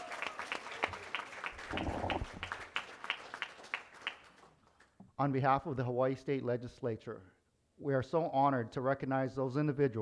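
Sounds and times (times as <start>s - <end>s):
crowd murmuring or cheering: 0.0s - 2.7s
audience applause: 0.0s - 4.5s
speech: 5.2s - 10.0s.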